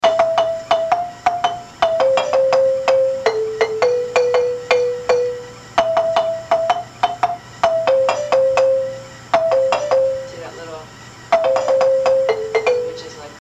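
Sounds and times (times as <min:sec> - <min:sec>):
high marimba lead: 0:00.0 - 0:10.6, 0:11.3 - 0:13.4.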